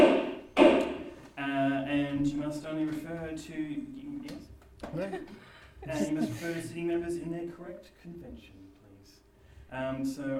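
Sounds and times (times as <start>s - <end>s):
debate chair's gavel striking: 0.0s - 1.2s
speech: 2.2s - 8.7s, 9.7s - 10.3s
laughter: 4.9s - 6.8s.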